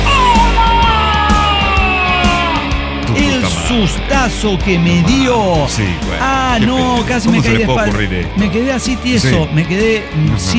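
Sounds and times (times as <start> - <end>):
person imitating a clown's loud drawn-out strained scream: 0.0 - 3.8
laughter: 3.1 - 10.5
speech: 3.7 - 10.5.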